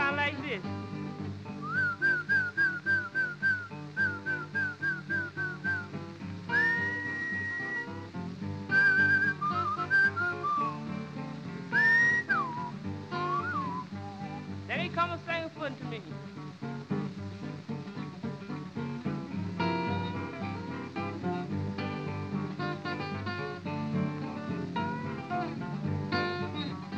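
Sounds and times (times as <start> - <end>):
steady musical accompaniment: 0.0 - 26.9
person whistling a lilting tune to call a horse: 1.6 - 5.9, 6.5 - 8.0, 8.7 - 10.8, 11.7 - 13.9.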